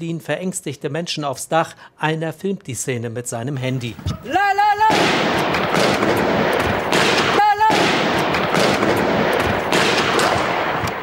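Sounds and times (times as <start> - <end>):
speech: 0.0 - 5.2
rapid gunfire from two masked heavily armed attackers in newspaper offices in Paris: 4.8 - 11.0.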